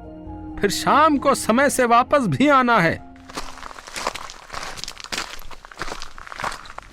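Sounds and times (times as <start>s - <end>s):
speech: 0.6s - 3.0s
crunching footsteps of a goldsmith walking away: 3.2s - 6.9s.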